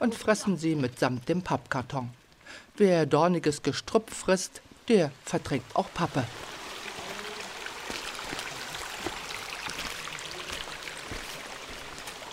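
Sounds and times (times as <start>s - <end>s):
speech: 0.0s - 6.5s
water rushing and gurgling along a stone channel: 4.0s - 12.3s
small splashes and trickles: 5.5s - 12.3s.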